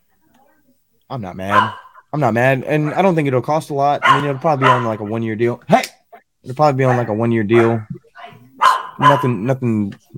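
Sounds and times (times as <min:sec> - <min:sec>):
speech: 0:01.1 - 0:08.0, 0:09.0 - 0:10.1
dogs barking and yelping excitedly: 0:01.5 - 0:02.1, 0:03.9 - 0:05.2, 0:06.1 - 0:09.4.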